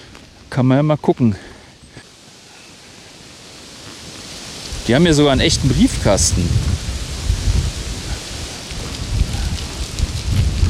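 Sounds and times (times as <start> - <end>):
rain falling over a garden: 0.0 - 10.6
speech: 0.5 - 1.5, 4.9 - 6.8
thunder rumbling over a garden: 4.8 - 10.6.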